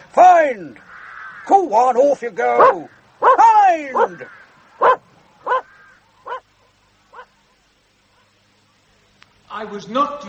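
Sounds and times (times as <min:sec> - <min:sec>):
speech: 0:00.4 - 0:04.4, 0:09.6 - 0:10.2
puppy barking in short sharp yaps: 0:02.5 - 0:05.7, 0:07.1 - 0:07.3.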